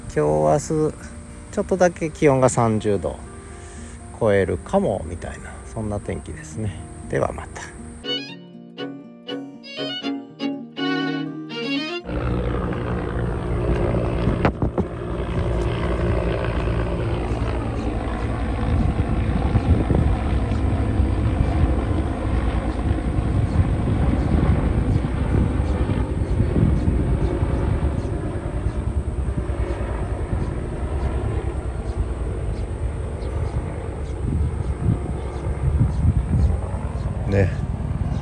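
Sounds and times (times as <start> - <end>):
speech: 0.2 - 3.3, 4.2 - 7.8
music: 0.2 - 12.4, 16.8 - 23.0
helicopter droning high overhead: 10.8 - 38.1.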